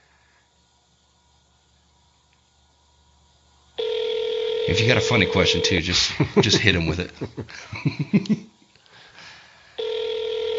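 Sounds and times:
telephone ringback tone on an outgoing call: 3.8 - 5.8, 9.8 - 10.5
speech: 4.7 - 8.5
laughter: 5.9 - 8.5.

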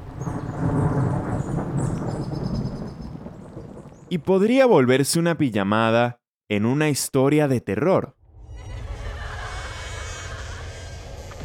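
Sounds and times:
deep rolling rumble of thunder in an electrical storm: 0.0 - 4.4
speech: 4.1 - 8.2.

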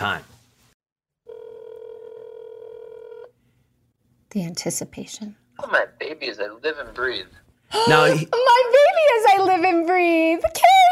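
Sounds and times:
speech: 0.0 - 0.3, 4.3 - 10.9
phone line steady electronic tone as a call is dialed out: 1.2 - 3.3.

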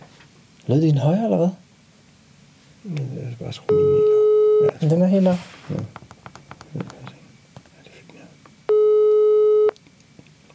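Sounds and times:
speech: 0.7 - 1.6, 2.8 - 6.0, 6.7 - 7.0
loud steady electronic telephone ringing tone: 3.7 - 4.8, 8.7 - 9.8
faint rustling: 4.8 - 8.4.

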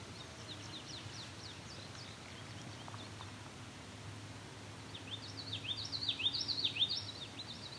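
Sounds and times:
songbird mimicking common yellowthroat song: 0.1 - 3.2, 4.9 - 7.7.

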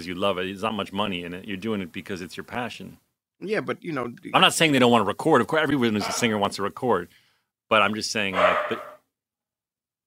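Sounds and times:
speech: 0.0 - 8.9
dog barking: 8.3 - 9.0.

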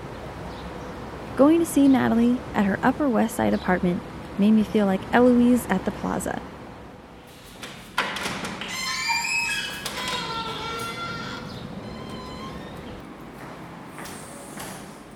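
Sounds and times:
speech: 1.4 - 6.5
apartment building elevator creaking and groaning as it moves up: 8.4 - 15.1
drawn-out wavering elevator squeals: 8.7 - 14.8.

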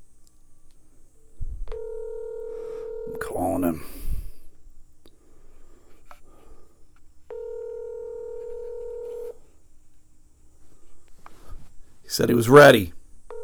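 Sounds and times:
long steady electronic phone tones while placing a call: 1.7 - 4.1, 7.3 - 9.4
speech: 3.4 - 4.0, 12.2 - 13.0.

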